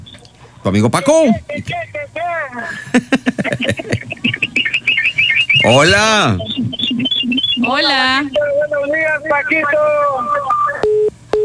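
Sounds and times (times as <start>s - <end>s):
laughter: 0.4s - 9.4s
voice on a phone line during a radio call-in: 0.6s - 2.8s, 5.5s - 11.0s
speech: 0.6s - 4.4s, 5.6s - 10.6s
mid-pitched beeps of a disconnected phone line: 1.0s - 2.2s, 3.5s - 11.4s.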